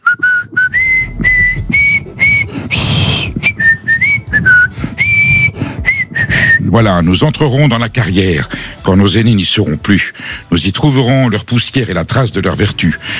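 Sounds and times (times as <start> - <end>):
person whistling an anthem melody: 0.0 - 6.8
speech: 6.8 - 13.1.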